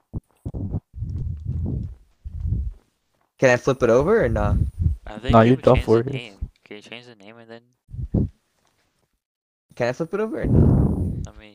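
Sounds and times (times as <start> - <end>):
hooves of a fast horse clip-clopping: 0.2 - 3.2
speech: 3.4 - 7.8, 9.8 - 11.5.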